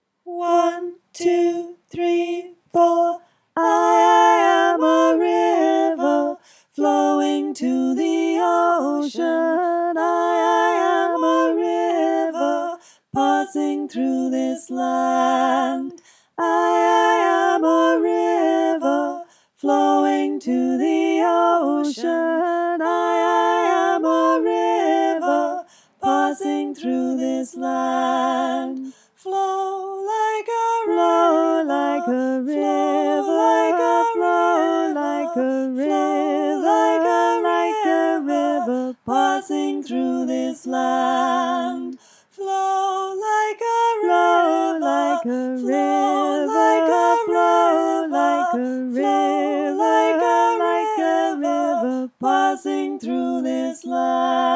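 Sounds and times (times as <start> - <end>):
soprano voice: 0.2 - 54.5.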